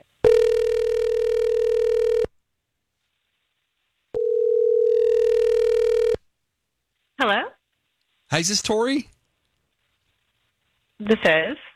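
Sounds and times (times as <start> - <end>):
telephone ringing tone on a call placed to a woman: 0.2 - 2.3, 4.1 - 6.2
speech: 8.4 - 9.1, 11.1 - 11.7.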